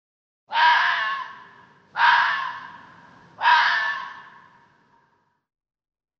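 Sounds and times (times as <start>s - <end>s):
fox calling: 0.5s - 4.7s.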